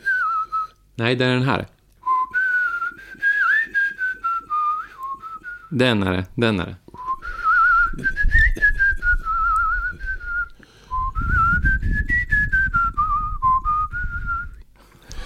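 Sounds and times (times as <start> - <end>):
three people whistling a tune together: 0.0 - 0.8, 2.0 - 5.7, 7.0 - 14.6
speech: 1.0 - 1.8, 5.7 - 6.8
breathy low rumble: 7.0 - 15.2.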